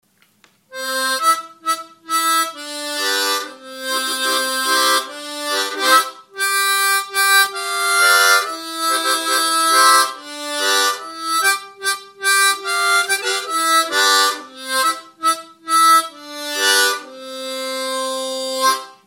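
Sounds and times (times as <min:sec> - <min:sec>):
folk song on harmonica played in octaves with tongue blocking: 0:00.7 - 0:19.0.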